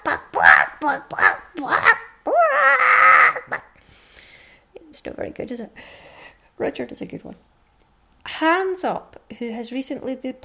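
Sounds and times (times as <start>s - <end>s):
person imitating a chicken clucking and squawking: 0.0s - 3.8s
speech: 0.9s - 1.7s, 5.4s - 7.5s, 8.4s - 10.4s.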